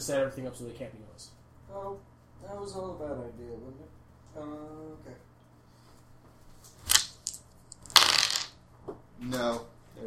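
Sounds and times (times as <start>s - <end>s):
speech: 0.0s - 5.3s, 9.2s - 10.0s
dice clattering and rolling onto a hard surface: 6.9s - 8.6s.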